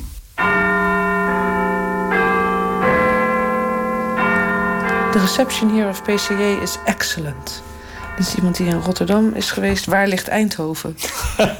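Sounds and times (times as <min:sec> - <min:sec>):
church clock bell striking: 0:00.4 - 0:10.5
speech: 0:05.2 - 0:11.5
laughter: 0:11.0 - 0:11.5.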